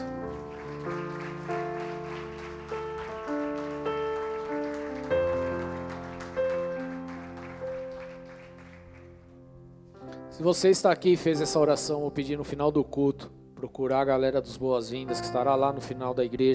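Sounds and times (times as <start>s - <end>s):
audience applauding: 0.0s - 9.4s
sustained keyboard chords: 0.0s - 16.5s
speech: 10.4s - 16.5s.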